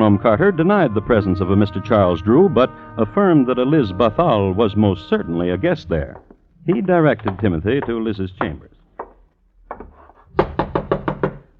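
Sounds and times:
speech: 0:00.0 - 0:08.8
soft taps on a door: 0:06.1 - 0:10.0
knocking on the door of inn chambers: 0:06.2 - 0:11.5.

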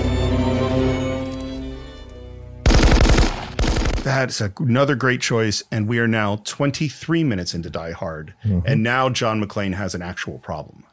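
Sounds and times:
low sustained musical drone: 0:00.0 - 0:02.6
rapid automatic gunfire: 0:02.6 - 0:04.2
speech: 0:04.1 - 0:10.9.

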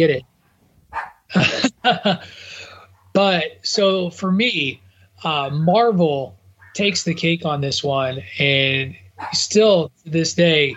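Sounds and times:
speech: 0:00.0 - 0:00.3, 0:00.9 - 0:02.5, 0:03.2 - 0:10.7
faint room hum: 0:00.0 - 0:10.7
dog barking: 0:00.5 - 0:02.0, 0:06.6 - 0:07.2, 0:09.2 - 0:09.5
dog yelping: 0:00.9 - 0:02.0, 0:06.6 - 0:07.2, 0:09.2 - 0:09.5
laughter: 0:01.3 - 0:02.8.

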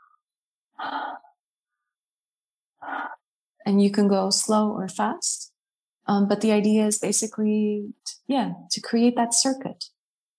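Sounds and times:
person breathing in during a slow breathing exercise: 0:00.8 - 0:01.3, 0:02.8 - 0:03.2
speech: 0:03.7 - 0:05.5, 0:06.1 - 0:10.0.

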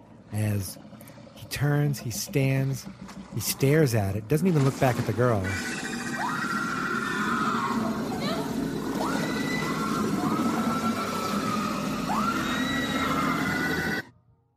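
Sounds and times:
thick rumbling wash of noise: 0:00.0 - 0:14.0
speech: 0:00.3 - 0:05.9
shrill wavering screams from a film scene: 0:05.4 - 0:14.1.

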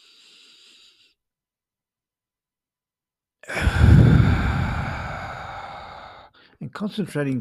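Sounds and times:
slow deep breath in through the nose and out through the mouth: 0:00.0 - 0:01.2, 0:03.4 - 0:06.6
speech: 0:06.6 - 0:07.3.

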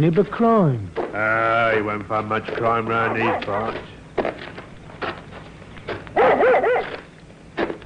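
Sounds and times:
speech: 0:00.0 - 0:04.0
dog barking excitedly: 0:03.0 - 0:03.8, 0:06.2 - 0:07.1.

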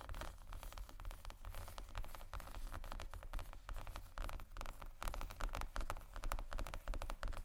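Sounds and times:
fingers tapping and scratching across leather bags: 0:00.1 - 0:07.4.

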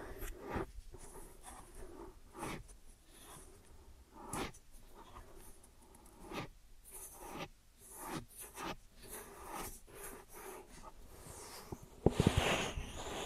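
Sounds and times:
rubbing and brushing of an ear and scalp massage: 0:00.2 - 0:13.2.

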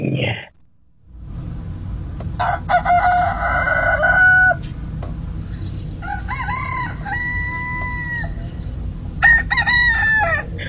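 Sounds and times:
steady low rumble of outdoor noise: 0:00.0 - 0:10.6
roosters crowing: 0:02.3 - 0:10.6.

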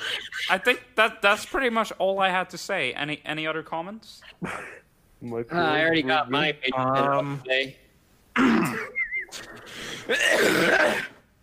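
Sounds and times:
speech: 0:00.5 - 0:07.8, 0:10.1 - 0:11.1
person sneezing: 0:08.4 - 0:11.3.

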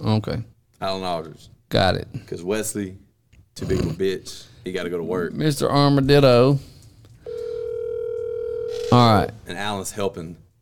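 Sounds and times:
speech: 0:00.1 - 0:03.0, 0:03.6 - 0:06.7, 0:08.9 - 0:10.4
outgoing phone call electronic ringing tone: 0:07.3 - 0:09.2.

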